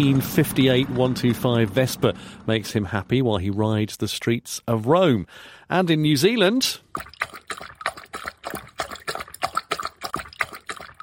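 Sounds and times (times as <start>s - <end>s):
speech: 0.0s - 7.7s
dog lapping water after play: 6.9s - 11.0s.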